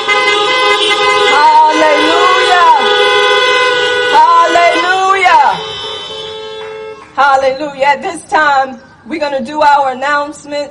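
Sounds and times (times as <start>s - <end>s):
chorus of car horns honking: 0.0s - 7.2s
speech: 7.4s - 10.6s.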